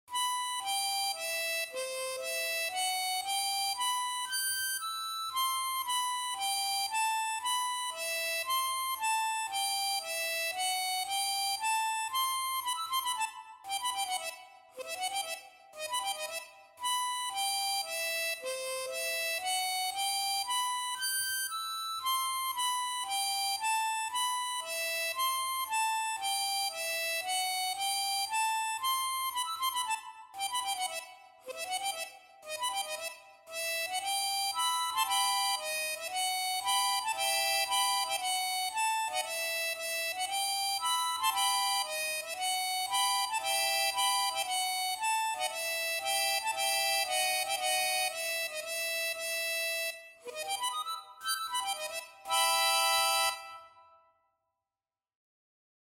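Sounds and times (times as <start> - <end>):
solo piece for chromatic harmonica: 0.1 - 54.1.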